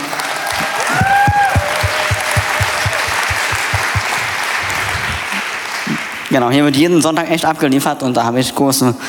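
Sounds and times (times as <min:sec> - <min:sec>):
audience at a sermon applauding: 0:00.0 - 0:06.9
individual hand claps: 0:00.1 - 0:06.2
speech: 0:06.3 - 0:09.0.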